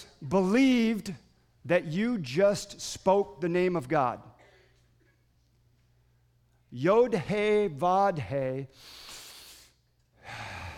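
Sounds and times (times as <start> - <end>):
speech: 0.2 - 4.3, 6.7 - 9.2
group of people breathing together: 8.8 - 10.7.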